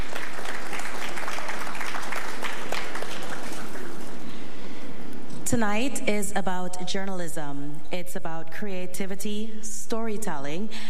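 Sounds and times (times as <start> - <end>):
audience applause: 0.0 - 4.2
speech: 5.5 - 10.8.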